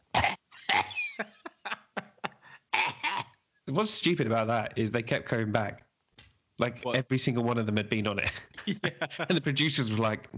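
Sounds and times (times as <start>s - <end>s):
person coughing: 0.0s - 3.4s
laughter: 0.6s - 3.3s, 8.2s - 10.2s
speech: 3.7s - 5.9s, 6.6s - 10.3s.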